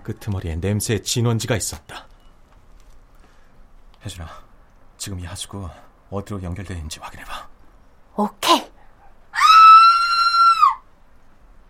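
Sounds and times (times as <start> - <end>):
speech: 0.0 - 2.1, 4.0 - 7.5, 8.2 - 8.7
woman screaming high-pitched from beyond a wall: 9.3 - 10.8.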